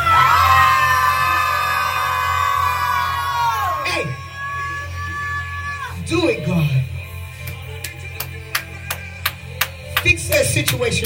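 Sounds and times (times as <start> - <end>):
large crowd screaming together: 0.0 - 6.9
speech: 10.6 - 11.0.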